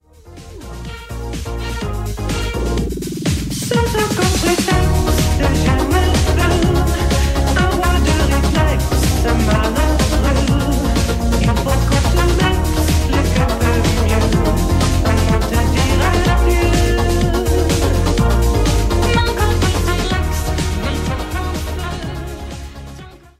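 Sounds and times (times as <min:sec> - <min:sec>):
party music: 0:00.1 - 0:23.3.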